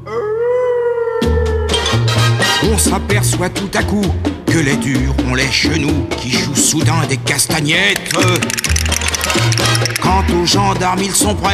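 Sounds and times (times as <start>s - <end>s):
long steady dog-like howl: 0.0s - 2.0s
speech: 2.7s - 11.5s.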